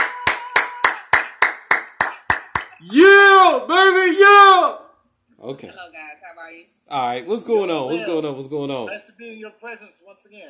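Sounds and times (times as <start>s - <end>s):
steady rhythmic clapping: 0.0s - 2.9s
speech: 2.8s - 4.8s, 5.4s - 10.4s.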